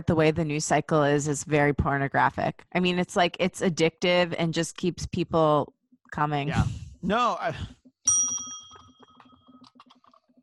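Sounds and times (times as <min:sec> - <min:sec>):
speech: 0:00.0 - 0:07.8
single bright bell strike ringing: 0:08.1 - 0:09.6.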